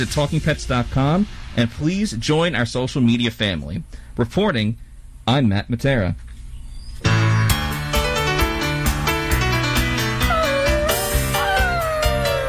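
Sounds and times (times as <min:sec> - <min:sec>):
speech: 0:00.0 - 0:06.3
dense musical backing: 0:07.0 - 0:12.4
puppy whimpering and howling: 0:10.1 - 0:12.4.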